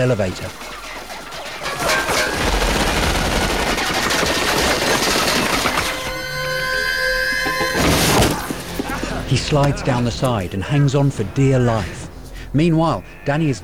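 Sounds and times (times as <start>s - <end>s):
speech: 0.0s - 0.8s, 9.3s - 13.6s
laughter: 0.0s - 13.6s
submachine gun firing a round: 1.5s - 6.0s.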